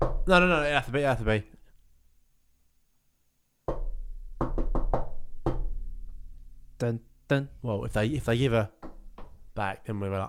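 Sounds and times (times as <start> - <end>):
speech: 0.2 - 1.6, 6.8 - 8.8, 9.6 - 10.2
loud knocks on a hard surface with a booming ring: 3.7 - 5.8, 8.8 - 9.4.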